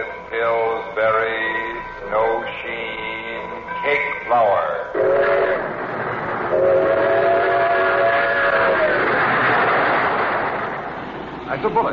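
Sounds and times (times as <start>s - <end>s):
long sustained train whistle: 0.0s - 5.8s, 6.5s - 9.2s
train rolling on rails into a station: 0.0s - 11.9s
speech: 0.3s - 2.8s, 11.6s - 11.9s.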